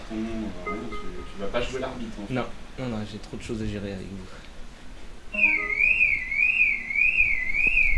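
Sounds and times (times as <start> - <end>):
speech: 1.5 - 4.4
shrill wavering electronic alarm tone: 5.3 - 7.9.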